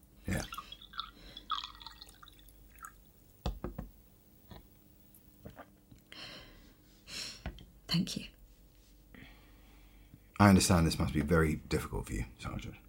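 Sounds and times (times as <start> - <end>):
water trickling into a glass: 0.3 - 3.1
speech: 7.9 - 8.3, 10.4 - 12.8.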